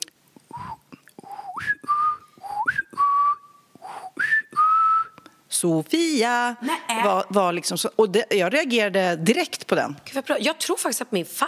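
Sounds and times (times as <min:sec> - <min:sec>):
person whistling a family call whistle: 0:00.5 - 0:05.4
speech: 0:05.6 - 0:11.4.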